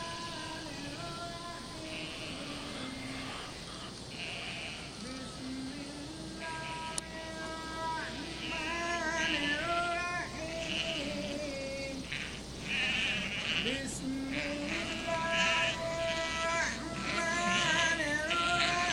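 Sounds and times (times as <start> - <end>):
flock of sheep bleating: 0.0 - 5.4, 6.4 - 18.9
shepherd calling sheep: 0.0 - 18.9.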